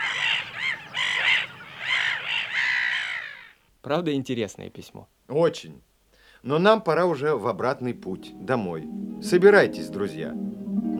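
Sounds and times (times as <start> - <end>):
harsh raspy squawking bird calls: 0.0 - 3.6
speech: 3.8 - 10.9.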